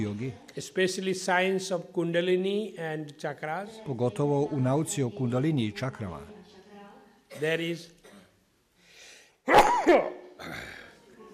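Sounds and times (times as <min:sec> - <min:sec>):
speech: 0:00.0 - 0:06.4, 0:07.3 - 0:08.0, 0:09.5 - 0:10.8
person sneezing: 0:09.4 - 0:10.9.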